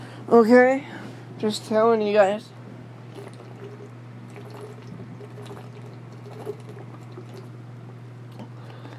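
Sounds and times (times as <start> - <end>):
steady low electrical hum: 0.0 - 8.9
speech: 0.3 - 2.6
person drinking water with sips and a swallow: 3.0 - 7.6, 8.3 - 8.9.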